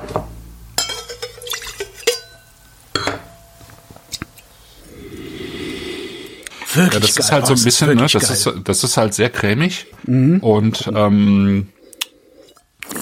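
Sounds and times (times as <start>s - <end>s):
glassware clinking and knocking: 0.8s - 3.6s
speech: 6.8s - 11.8s.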